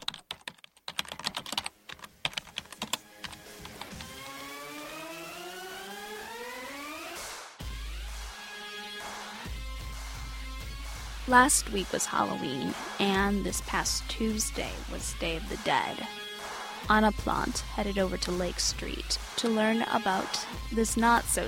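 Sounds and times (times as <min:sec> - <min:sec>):
typing on a computer keyboard: 0:00.0 - 0:04.1
speech: 0:11.3 - 0:16.2, 0:16.8 - 0:21.4.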